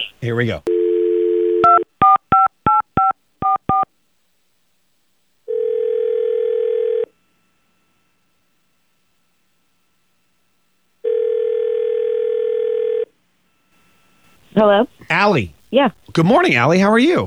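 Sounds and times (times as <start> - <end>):
speech: 0.2 - 0.7, 14.6 - 17.2
telephone dial tone: 0.7 - 1.8, 5.5 - 7.1, 11.0 - 13.1
telephone ringing tones: 0.7 - 3.9, 5.5 - 7.2, 11.0 - 13.2.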